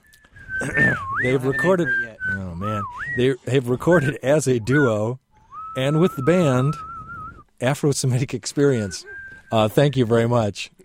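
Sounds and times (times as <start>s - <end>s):
whistled melody by a pianist and a bassist: 0.0s - 3.2s, 4.6s - 7.4s, 8.9s - 9.7s
speech: 0.6s - 5.2s, 5.8s - 6.9s, 7.6s - 10.8s.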